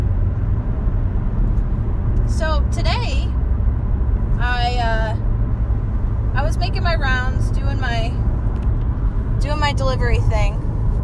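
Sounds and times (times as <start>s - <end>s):
car engine and road noise at highway speed: 0.0s - 11.0s
speech: 6.8s - 8.3s, 9.4s - 10.6s.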